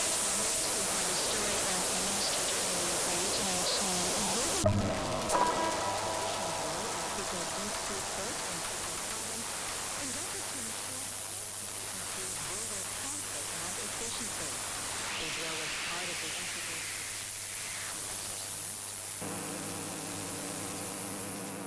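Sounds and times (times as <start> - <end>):
Soviet radio jamming broadband static from an electronic noise generator: 0.0 - 21.6
faint tonal streaks beneath the jamming roar: 0.2 - 14.5.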